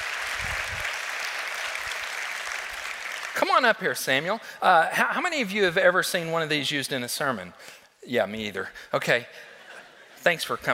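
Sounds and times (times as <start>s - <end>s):
room full of people applauding: 0.0s - 3.8s
speech: 3.4s - 9.5s, 10.2s - 10.7s.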